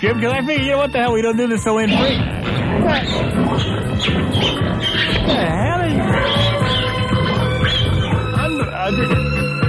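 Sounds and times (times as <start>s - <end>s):
speech: 0.0s - 6.6s
bird call, possibly an owl or hawk: 1.9s - 8.4s
loud dense steady wash of harmonic sound: 1.9s - 9.5s.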